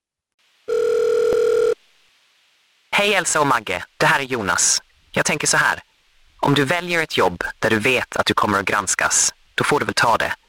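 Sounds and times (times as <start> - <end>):
electronic telephone ring: 0.7 - 1.8
speech: 3.0 - 10.4.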